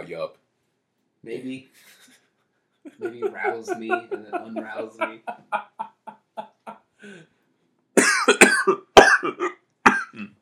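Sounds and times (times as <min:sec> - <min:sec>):
speech: 0:00.0 - 0:00.4, 0:01.2 - 0:02.2, 0:02.8 - 0:07.3
laughter: 0:02.9 - 0:06.9
person coughing after inhaling spit: 0:08.0 - 0:10.3.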